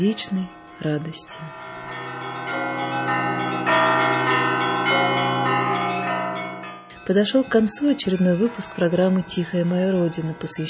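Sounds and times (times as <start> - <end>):
speech: 0.0 - 1.6, 7.1 - 10.6
church bells ringing joyfully in a peal: 0.0 - 10.6.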